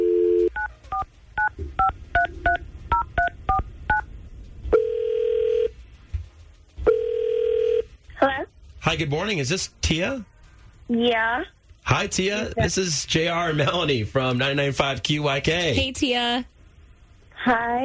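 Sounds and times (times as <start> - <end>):
long steady phone tones: 0.0 - 4.1, 4.7 - 5.8, 6.8 - 7.9
speech: 8.9 - 10.3, 10.9 - 16.5, 17.4 - 17.8.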